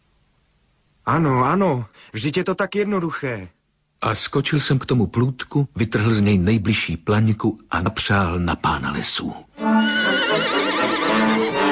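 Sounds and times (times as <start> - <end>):
speech: 1.1 - 10.0
horse rearing and neighing: 9.6 - 11.7.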